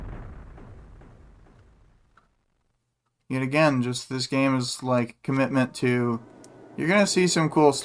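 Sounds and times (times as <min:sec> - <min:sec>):
firework from an opened present bursting: 0:00.0 - 0:02.6
speech: 0:03.3 - 0:07.8.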